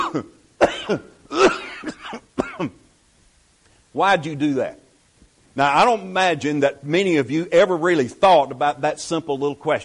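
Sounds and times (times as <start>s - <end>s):
person coughing harshly in an exaggerated theatrical fit: 0.0s - 2.8s
speech: 0.1s - 2.8s, 3.9s - 4.8s, 5.6s - 9.8s.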